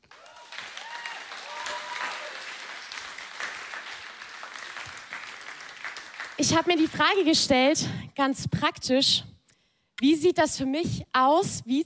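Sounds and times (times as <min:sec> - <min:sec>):
audience clapping: 0:00.0 - 0:07.3
speech: 0:06.4 - 0:09.3, 0:10.0 - 0:11.8.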